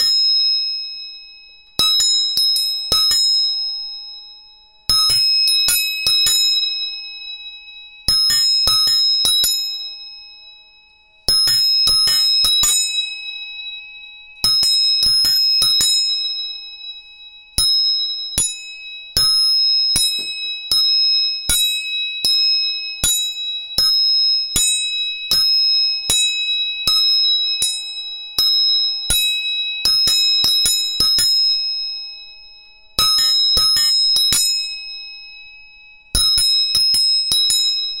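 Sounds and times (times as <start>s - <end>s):
three tuning forks struck and ringing: 0.0s - 37.9s.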